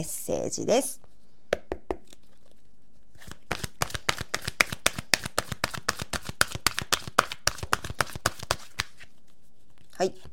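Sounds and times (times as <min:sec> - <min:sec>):
speech: 0:00.0 - 0:01.1
oracle cards being shuffled: 0:03.2 - 0:10.3.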